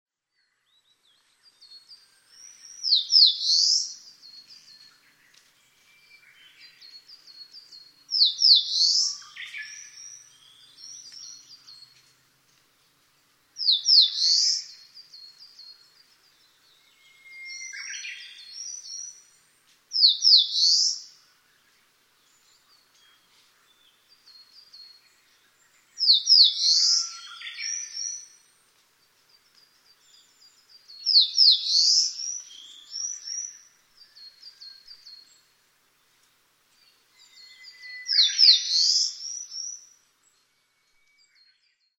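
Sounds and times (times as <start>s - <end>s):
Eastern crowned warbler singing in Toyone, Aichi: 0.4s - 12.4s, 13.6s - 36.1s, 36.8s - 41.9s.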